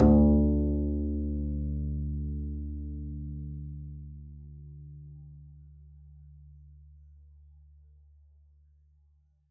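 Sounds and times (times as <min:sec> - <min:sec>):
double bass pizzicato D2 note: 0:00.0 - 0:05.8.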